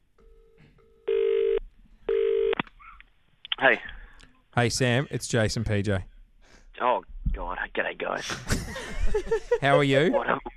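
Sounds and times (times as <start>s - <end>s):
electronic tones from a phone being dialed: 0.2s - 2.6s
speech: 3.6s - 3.9s, 4.6s - 6.1s, 6.8s - 7.1s, 7.8s - 10.5s
laughter: 8.2s - 10.5s.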